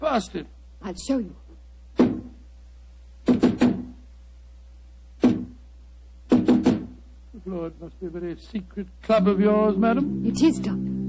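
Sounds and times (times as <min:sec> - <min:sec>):
speech: 0:00.2 - 0:01.4, 0:07.4 - 0:10.9
knocks on a heavy wooden door: 0:03.3 - 0:03.9, 0:06.3 - 0:07.0.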